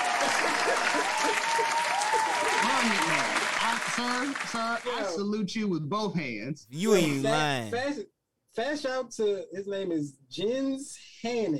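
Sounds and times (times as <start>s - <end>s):
crowd applauding: 0.0s - 4.6s, 6.8s - 7.7s
speech: 4.0s - 11.5s.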